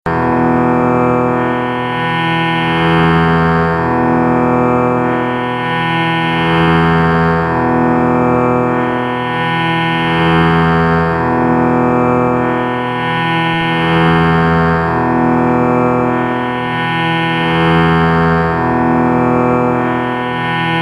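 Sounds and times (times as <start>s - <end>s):
sruthi drone in E: 0.1s - 20.8s.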